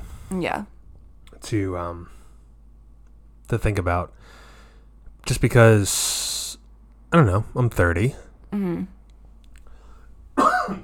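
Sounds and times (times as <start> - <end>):
speech: 0.3 - 0.7, 1.4 - 2.2, 3.5 - 4.4, 5.2 - 6.3, 7.1 - 9.0, 10.7 - 10.8
person coughing harshly: 10.4 - 10.8.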